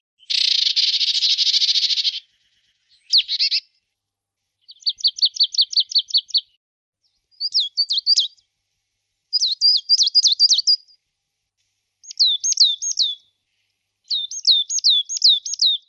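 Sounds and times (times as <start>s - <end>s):
marsh tit Parus palustris calling: 0.2s - 3.6s, 4.6s - 8.4s, 9.3s - 11.0s, 12.0s - 13.3s, 14.1s - 15.8s.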